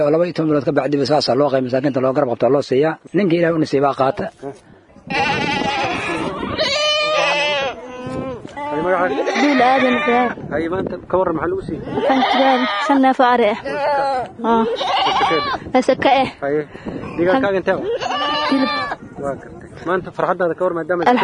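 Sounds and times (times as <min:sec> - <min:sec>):
speech: 0:00.0 - 0:05.9, 0:08.8 - 0:21.2
sheep and goats bleating: 0:05.0 - 0:10.4, 0:11.9 - 0:13.0, 0:13.6 - 0:15.6, 0:17.8 - 0:19.0.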